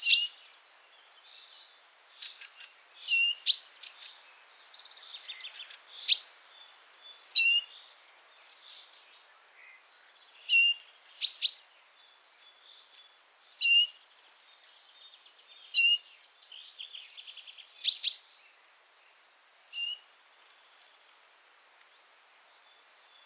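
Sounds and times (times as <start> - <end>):
Great tit Parus major giving thin high whistles dropping to a slurred note: 0.0 - 0.4, 2.2 - 4.1, 4.7 - 7.8, 9.6 - 14.0, 15.1 - 18.4, 19.3 - 20.0.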